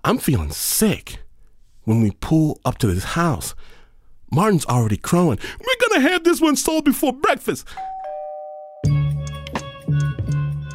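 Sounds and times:
speech: 0:00.1 - 0:01.2, 0:01.8 - 0:08.0
doorbell ding-dong chime: 0:07.8 - 0:09.1.

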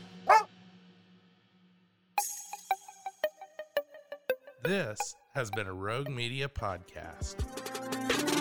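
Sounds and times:
dog barking: 0:00.2 - 0:00.5
speech: 0:04.6 - 0:08.3.

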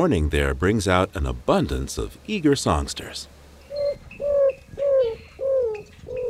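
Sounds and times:
speech: 0:00.0 - 0:03.4
greater roadrunner cooing song in the desert of the southwestern United States: 0:03.7 - 0:06.2.

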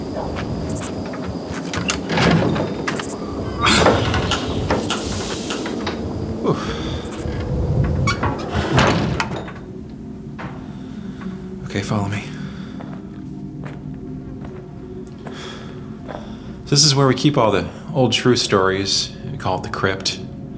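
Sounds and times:
heavy door scraping and rumbling open: 0:00.0 - 0:09.8
speech: 0:11.9 - 0:12.2, 0:16.7 - 0:20.2.

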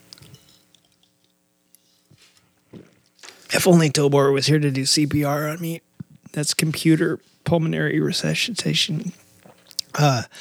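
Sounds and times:
person sipping beer: 0:02.0 - 0:03.5
speech: 0:03.5 - 0:09.2, 0:10.0 - 0:10.3.

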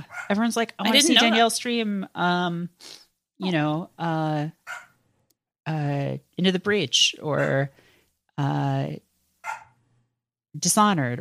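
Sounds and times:
excited dogs barking indoors: 0:00.0 - 0:00.4, 0:04.7 - 0:05.0, 0:07.4 - 0:07.6, 0:09.4 - 0:09.8
speech: 0:00.3 - 0:04.9, 0:05.6 - 0:07.8, 0:08.4 - 0:09.6, 0:10.6 - 0:11.1.

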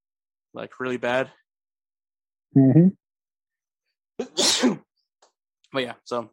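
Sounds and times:
speech: 0:00.6 - 0:01.4, 0:02.5 - 0:03.0, 0:04.2 - 0:04.8, 0:05.7 - 0:06.3
loud sneeze: 0:04.2 - 0:04.9.

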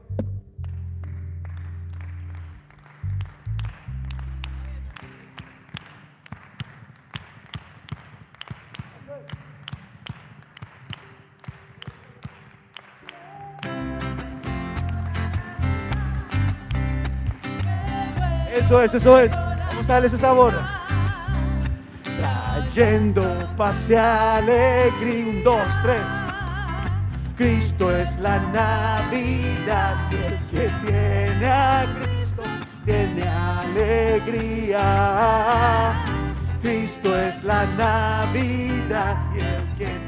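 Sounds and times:
low droning bass: 0:00.0 - 0:05.0, 0:13.9 - 0:36.8
audience clapping a steady quick rhythm in unison with their palms: 0:00.0 - 0:40.0
full band music: 0:11.8 - 0:40.0
speech: 0:18.7 - 0:20.7, 0:22.7 - 0:26.2, 0:27.4 - 0:32.1, 0:32.8 - 0:40.0.

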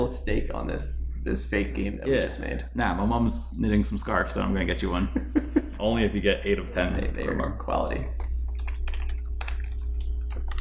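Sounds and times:
speech: 0:00.0 - 0:08.3
steady low electrical hum: 0:00.0 - 0:10.5
typing on a computer keyboard: 0:08.2 - 0:10.5.

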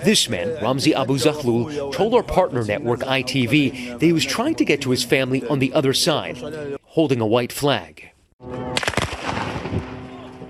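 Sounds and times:
faint indistinct voices: 0:00.0 - 0:06.8
speech: 0:00.0 - 0:08.7
rapid burst of sharp gunshots: 0:08.8 - 0:09.9.

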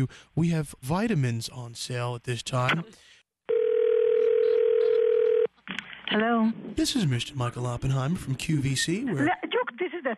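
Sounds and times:
speech: 0:00.0 - 0:03.2, 0:06.1 - 0:10.1
telephone dial tone after hanging up: 0:03.5 - 0:05.5.

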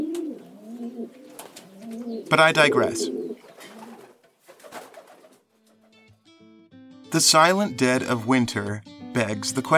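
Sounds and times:
pigeons cooing: 0:00.0 - 0:05.9
speech: 0:02.3 - 0:03.2, 0:07.2 - 0:09.7.

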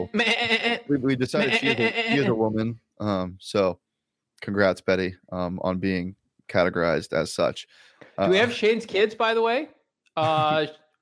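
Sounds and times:
goat bleating: 0:00.0 - 0:02.4
speech: 0:00.0 - 0:03.8, 0:04.4 - 0:10.9.

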